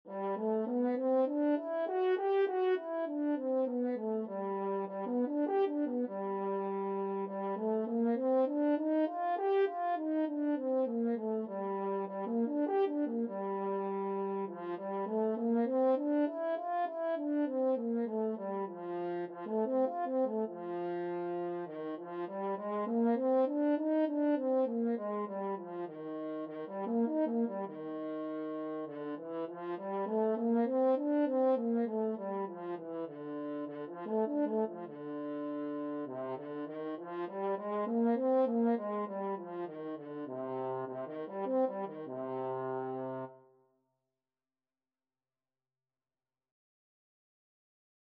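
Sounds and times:
French horn playing scales: 0:00.1 - 0:43.4.

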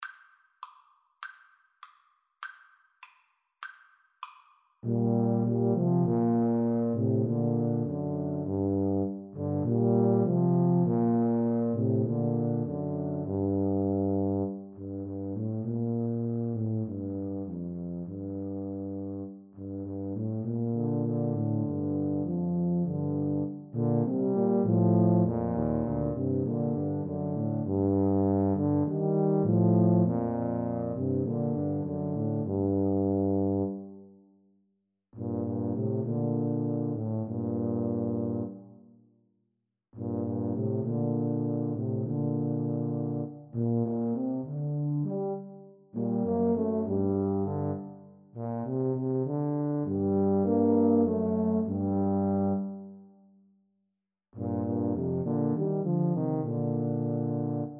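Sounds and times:
tuba trio: 0:04.2 - 0:34.0, 0:35.2 - 0:38.9, 0:40.0 - 0:53.0, 0:54.4 - 0:57.7.

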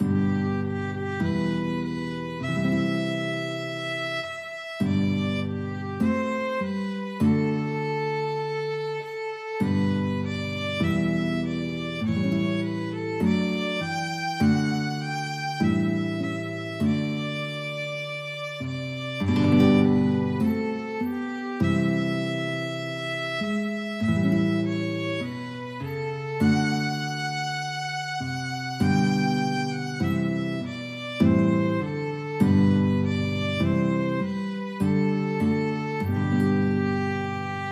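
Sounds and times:
guitar: 0:00.0 - 0:37.7
violin: 0:00.0 - 0:37.7.

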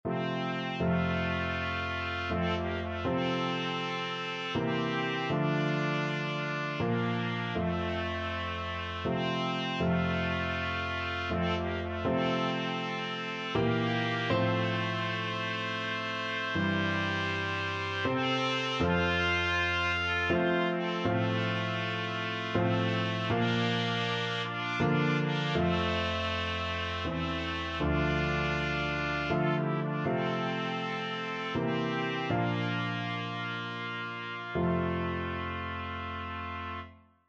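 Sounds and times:
trumpet duet playing a hymn: 0:00.0 - 0:37.0.

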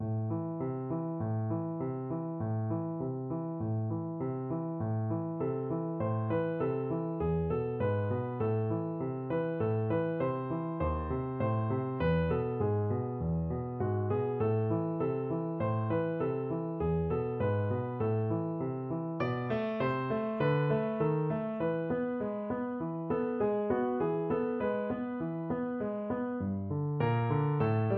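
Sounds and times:
piano piece: 0:00.0 - 0:27.9.

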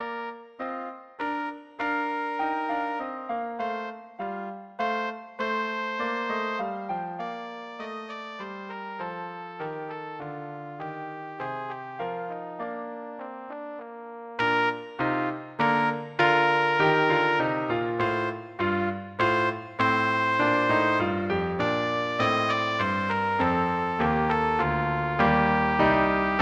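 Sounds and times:
trumpet piece: 0:00.0 - 0:26.4.

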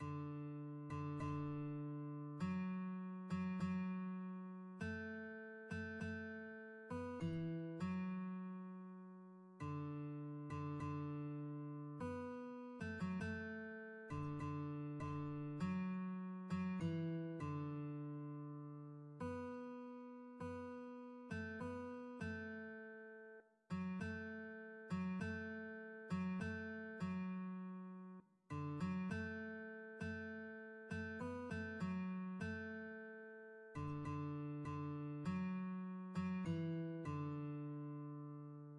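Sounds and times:
guitar: 0:00.0 - 0:38.7.

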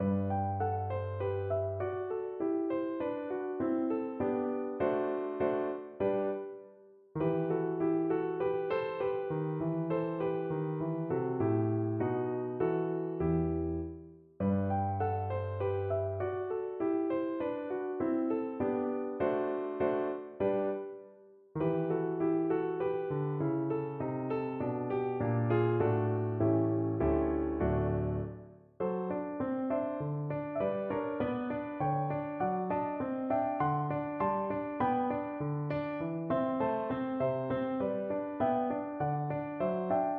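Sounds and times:
piano piece: 0:00.0 - 0:40.1.

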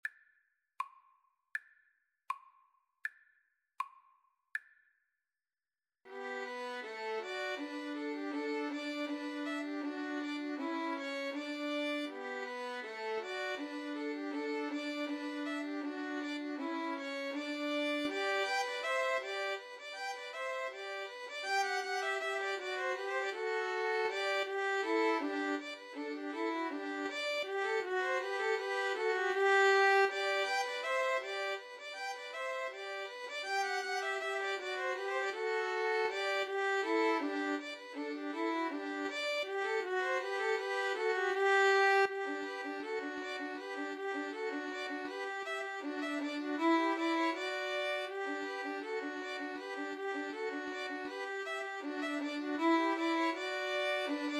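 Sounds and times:
two violins and cello playing slowly: 0:06.2 - 0:54.3.

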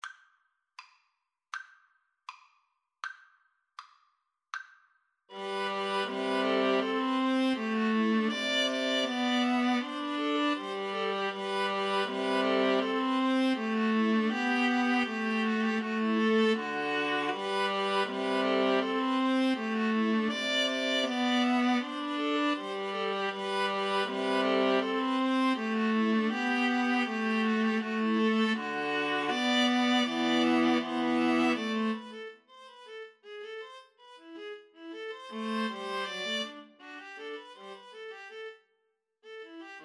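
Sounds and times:
viola trio playing a gavotte: 0:05.4 - 0:32.3, 0:35.0 - 0:38.1.

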